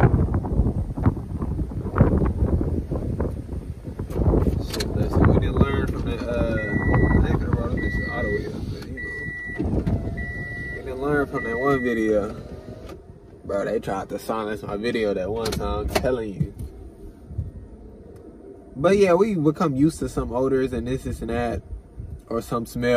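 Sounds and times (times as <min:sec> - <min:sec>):
gusty wind buffeting the microphone: 0:00.0 - 0:22.9
evenly spaced high beeps: 0:06.5 - 0:12.1
speech: 0:13.5 - 0:16.6, 0:18.8 - 0:21.7, 0:22.3 - 0:22.9.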